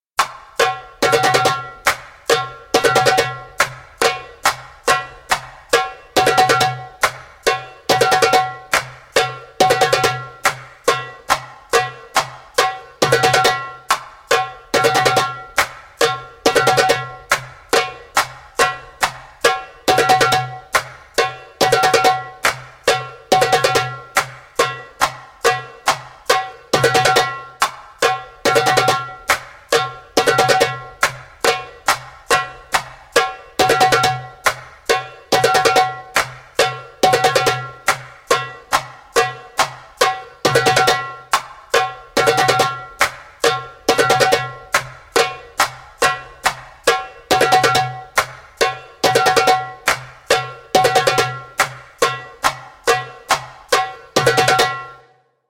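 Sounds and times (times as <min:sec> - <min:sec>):
slow accented djembe percussion: 0:00.2 - 0:55.4.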